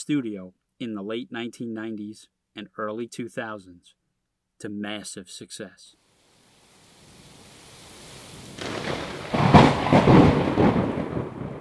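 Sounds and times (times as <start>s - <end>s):
speech: 0.0s - 4.0s, 4.6s - 6.0s
steady rain in a thunderstorm: 6.0s - 11.6s
low rolling thunder in a thunderstorm: 7.2s - 11.6s.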